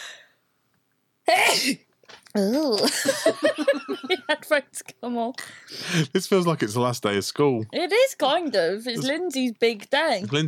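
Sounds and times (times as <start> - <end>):
loud sneeze: 1.3 - 1.8
speech: 1.3 - 10.4
laughter: 2.8 - 4.4.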